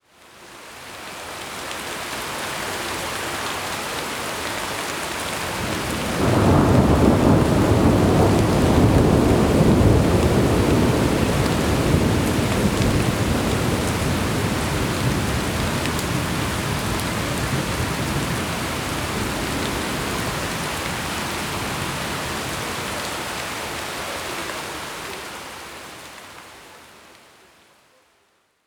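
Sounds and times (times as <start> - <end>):
city rain ambience: 0.0 - 28.3.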